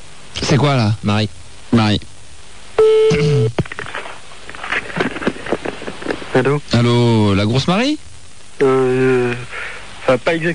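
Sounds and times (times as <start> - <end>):
speech: 0.5 - 2.1, 6.4 - 9.5, 10.1 - 10.5
loud sustained telephone beep tone: 2.8 - 3.5.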